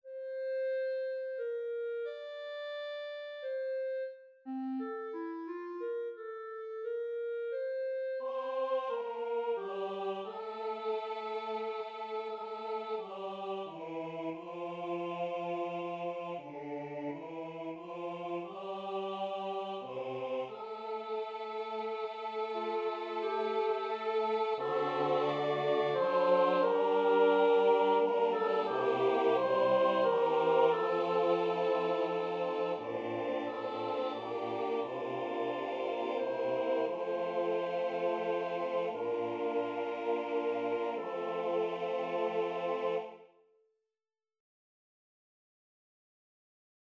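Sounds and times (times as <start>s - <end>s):
clarinet: 0.0s - 13.2s, 19.9s - 43.2s
choir: 8.2s - 43.5s.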